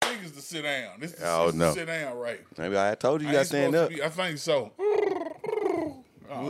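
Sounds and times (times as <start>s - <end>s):
speech: 0.4s - 5.0s, 5.8s - 6.4s
person imitating a dove-like bird call with their voice: 4.8s - 6.4s.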